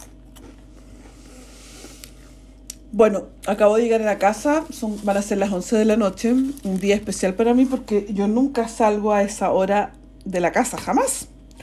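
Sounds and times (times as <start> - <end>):
chewing a tomato at home: 0.0 - 2.9
low steady hum: 0.0 - 11.6
speech: 2.9 - 11.3.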